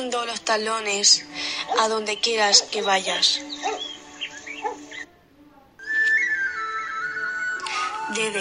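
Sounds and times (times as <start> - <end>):
speech: 0.0 - 3.7, 8.1 - 8.3
eerie ghostly whistling: 5.8 - 8.3.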